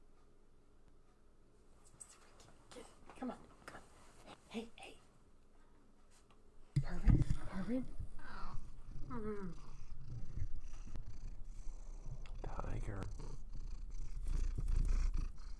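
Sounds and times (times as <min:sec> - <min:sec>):
speech: 0:03.2 - 0:03.5
domestic cat purring: 0:06.9 - 0:15.5.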